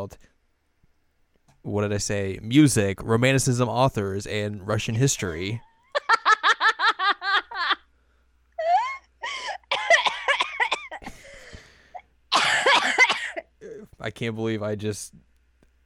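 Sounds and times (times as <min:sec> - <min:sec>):
speech: 0:00.0 - 0:00.3, 0:01.6 - 0:05.7, 0:14.0 - 0:15.3
wheezy laughter and giggles: 0:05.6 - 0:07.9, 0:08.6 - 0:11.1
person coughing: 0:09.5 - 0:14.0.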